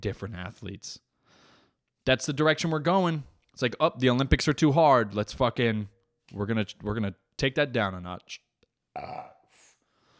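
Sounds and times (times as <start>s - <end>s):
speech: 0.0s - 1.1s, 2.0s - 8.4s, 9.0s - 9.4s
loud burp: 8.9s - 9.5s.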